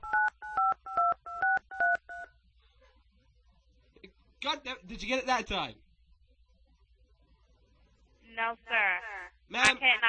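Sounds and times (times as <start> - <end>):
telephone keypad button tones during a phone call: 0.0 - 2.3
speech: 4.4 - 5.8, 8.4 - 10.0.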